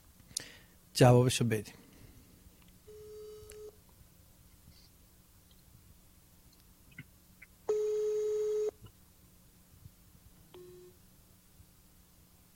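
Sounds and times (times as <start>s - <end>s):
faint noise: 0.0s - 12.5s
speech: 1.0s - 1.8s
unanswered telephone call ringback tones: 2.9s - 3.8s, 7.7s - 8.8s.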